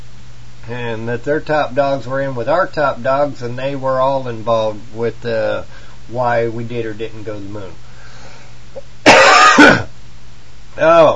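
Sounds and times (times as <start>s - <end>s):
speech: 0.7s - 7.8s, 10.8s - 11.1s
harsh cough: 9.0s - 10.0s.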